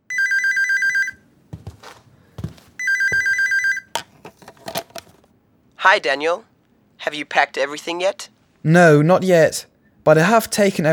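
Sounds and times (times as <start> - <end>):
telephone ringing: 0.1 - 1.2, 2.8 - 4.0
rustling handling noises: 1.6 - 5.3
speech: 5.8 - 6.5, 7.1 - 10.9.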